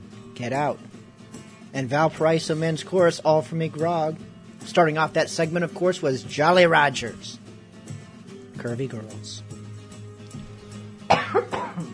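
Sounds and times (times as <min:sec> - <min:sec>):
speech: 0:00.4 - 0:01.0, 0:01.7 - 0:07.4, 0:08.6 - 0:09.5
coughs: 0:11.0 - 0:11.9.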